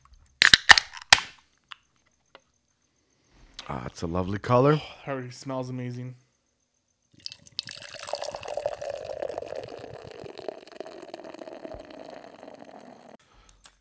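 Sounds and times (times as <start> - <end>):
speech: 3.7 - 6.2
beer pouring into a glass with fizzy bubbling: 7.2 - 13.2.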